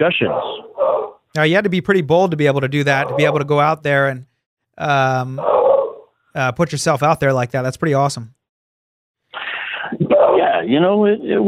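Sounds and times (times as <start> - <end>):
speech: 0.0 - 0.6, 1.3 - 5.6, 6.3 - 8.4, 10.7 - 11.4
dog barking: 0.2 - 1.2, 3.0 - 3.5, 5.4 - 6.1, 10.1 - 10.6.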